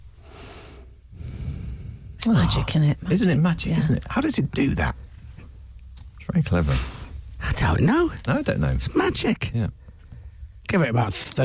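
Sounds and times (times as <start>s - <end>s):
deep sniff through cleared nose: 0.2s - 2.2s
speech: 2.2s - 5.0s, 6.3s - 7.0s, 7.6s - 9.8s, 10.7s - 11.4s.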